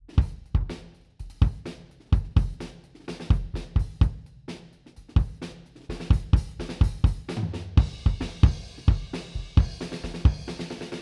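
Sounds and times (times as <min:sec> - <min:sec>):
kick drum recorded from a distance through a blanket: 0:00.0 - 0:02.6, 0:03.3 - 0:04.2, 0:06.1 - 0:10.4.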